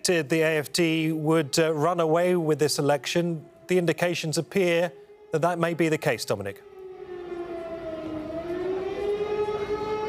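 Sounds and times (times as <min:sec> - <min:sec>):
speech: 0:00.0 - 0:06.7
air raid siren sounded by protesting activists beside a parliament building: 0:00.0 - 0:10.0.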